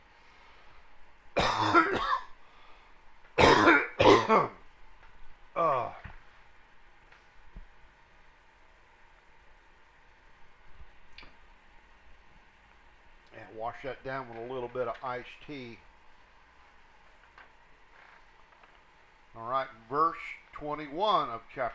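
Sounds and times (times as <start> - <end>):
man clearing his throat into a microphone: 1.4 - 2.3, 3.4 - 4.6
speech: 13.8 - 15.9, 19.4 - 21.7.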